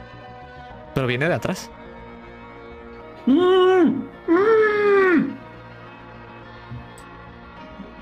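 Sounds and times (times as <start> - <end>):
speech: 1.0 - 1.8, 3.2 - 4.5
muffled moaning voice: 3.2 - 5.4.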